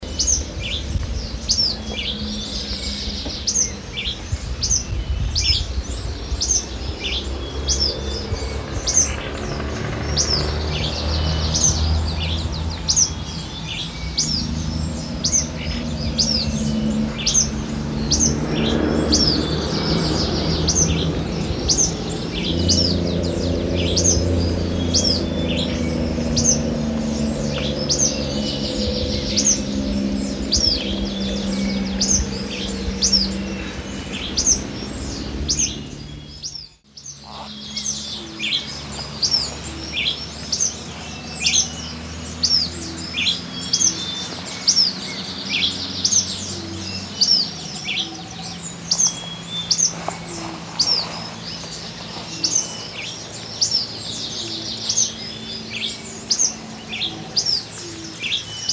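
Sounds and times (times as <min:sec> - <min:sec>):
Anairetes nigrocristatus Black-crested Tit-Tyrant calling: 0:00.0 - 0:58.7.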